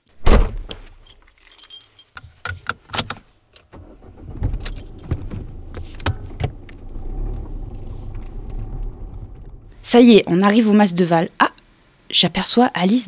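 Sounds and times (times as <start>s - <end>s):
car door thudding shut: 0.2s - 0.8s, 3.8s - 10.0s
keys jangling: 0.8s - 3.2s, 4.1s - 6.6s
car engine starting and rumbling as the car pulls away: 2.9s - 12.6s
speech: 9.9s - 11.4s, 12.2s - 13.0s.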